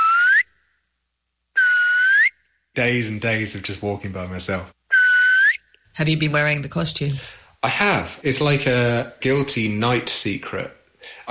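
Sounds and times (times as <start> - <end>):
clear loud whistle rising in pitch in a snowy pine forest: 0.0 - 0.7, 1.5 - 2.6, 4.9 - 5.7
speech: 2.8 - 4.8, 6.0 - 11.3.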